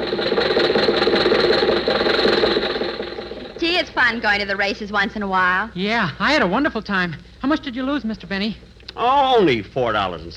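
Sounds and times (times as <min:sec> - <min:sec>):
car engine running while driving home from the races: 0:00.0 - 0:03.6
speech: 0:04.1 - 0:10.3.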